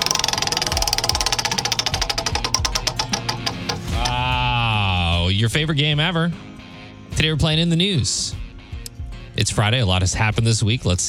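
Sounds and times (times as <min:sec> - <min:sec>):
ringing tone: 0:00.0 - 0:04.1
prize wheel spinning with ratcheting clicks: 0:00.0 - 0:04.2
low musical tones: 0:00.0 - 0:04.7
speech: 0:05.4 - 0:06.5, 0:07.2 - 0:08.5, 0:09.4 - 0:11.0.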